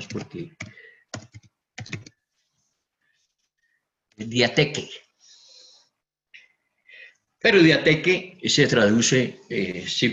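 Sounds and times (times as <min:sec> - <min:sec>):
speech: 0:00.0 - 0:01.2, 0:04.2 - 0:05.0, 0:07.4 - 0:10.1
typing on a computer keyboard: 0:00.0 - 0:02.2.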